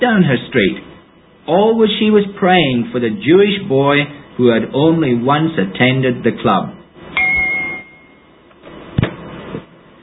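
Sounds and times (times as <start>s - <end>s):
speech: 0.0s - 0.9s, 1.5s - 6.8s
bright doorbell chime: 7.2s - 8.3s.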